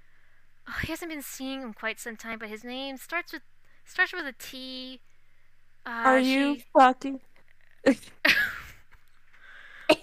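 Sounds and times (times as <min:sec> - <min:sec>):
faint steady whine: 0:00.0 - 0:10.0
speech: 0:00.8 - 0:05.1, 0:05.8 - 0:08.4
person coughing: 0:09.9 - 0:10.0.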